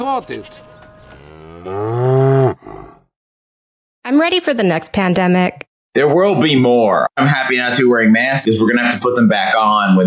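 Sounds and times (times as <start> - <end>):
speech: 0.1 - 0.7, 1.6 - 2.1, 4.1 - 10.0
cow mooing: 1.0 - 3.0.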